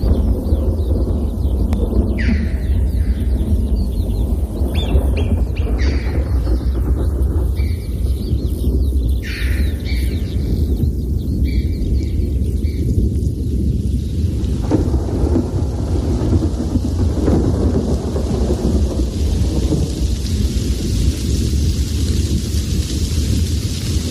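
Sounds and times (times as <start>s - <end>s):
red-billed chough calls: 0.0s - 13.0s
deep continuous rumble of thunder: 0.0s - 24.1s
steady hiss of falling rain: 0.0s - 24.1s.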